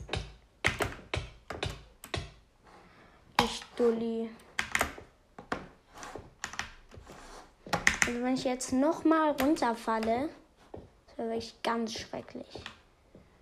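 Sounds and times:
loud computer keyboard typing and key presses: 0:00.0 - 0:02.4, 0:04.4 - 0:05.6, 0:06.4 - 0:06.9, 0:07.7 - 0:08.3
speech: 0:03.5 - 0:04.4, 0:08.1 - 0:10.4, 0:11.2 - 0:12.8.

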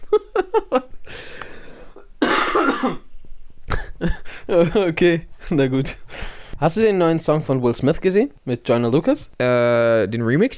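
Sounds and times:
short bursts of laughter: 0:00.0 - 0:01.0, 0:03.7 - 0:05.0
speech: 0:00.1 - 0:00.9, 0:04.5 - 0:10.5
rough breathy breathing: 0:01.0 - 0:02.1, 0:06.0 - 0:06.6
harsh fit of coughing: 0:02.2 - 0:03.1, 0:03.7 - 0:04.4.

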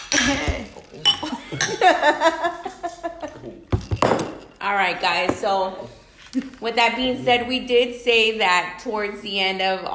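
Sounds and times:
glasses clinking in a toast: 0:00.0 - 0:02.0, 0:03.7 - 0:04.6
laughter: 0:01.2 - 0:03.6
speech: 0:02.0 - 0:02.5, 0:04.7 - 0:09.9.

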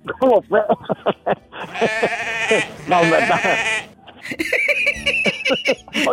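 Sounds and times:
speech: 0:00.2 - 0:01.2, 0:01.8 - 0:06.1
laughter: 0:00.2 - 0:06.1
sheep bleating: 0:01.6 - 0:04.0.

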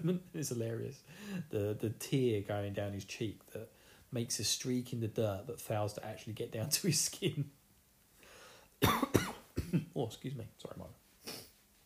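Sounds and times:
speech: 0:00.0 - 0:07.6, 0:08.8 - 0:11.4
sharp coughs: 0:08.8 - 0:09.9.

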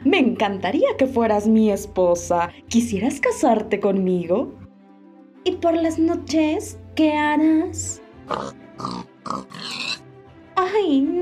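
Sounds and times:
speech: 0:00.2 - 0:04.6, 0:05.4 - 0:10.0, 0:10.6 - 0:11.2
pig grunting and oinking: 0:08.3 - 0:10.0.

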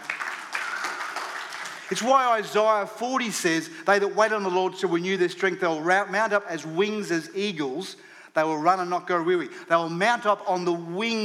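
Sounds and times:
crowd applause: 0:00.0 - 0:02.4
speech: 0:01.9 - 0:11.2.

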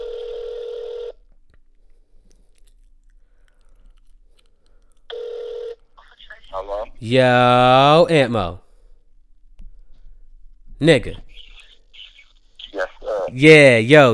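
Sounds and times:
phone ringback tones placing a call to add another person: 0:00.0 - 0:01.2, 0:05.1 - 0:05.9
speech: 0:06.7 - 0:08.6, 0:10.8 - 0:11.4, 0:13.3 - 0:14.1.

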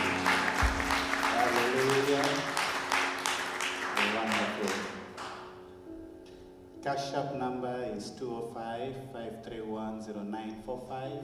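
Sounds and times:
audience clapping: 0:00.0 - 0:05.6
speech: 0:07.0 - 0:11.2.

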